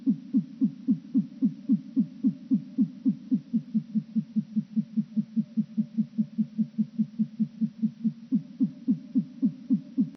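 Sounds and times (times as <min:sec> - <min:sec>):
nightjar churring song slowed down by three octaves: 0:00.0 - 0:10.1.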